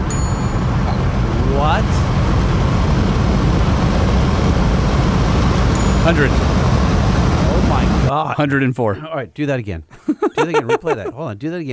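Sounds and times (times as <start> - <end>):
small hand bell struck once: 0.0 - 1.0, 5.8 - 6.3
low road noise inside a moving loaded pickup: 0.0 - 8.1
speech: 6.1 - 6.6, 8.1 - 11.7
laughter: 9.9 - 11.2.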